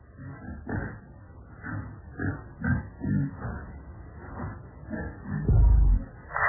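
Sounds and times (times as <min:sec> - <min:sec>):
pig grunting and oinking: 0:00.1 - 0:06.2
heavy low thump: 0:05.4 - 0:06.3.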